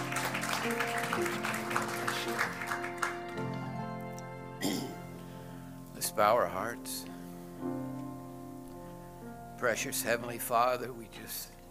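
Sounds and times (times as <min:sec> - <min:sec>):
audience clapping in praise: 0:00.0 - 0:04.4
sustained organ or keyboard chords: 0:00.0 - 0:11.6
speech: 0:06.2 - 0:08.0, 0:09.6 - 0:11.6.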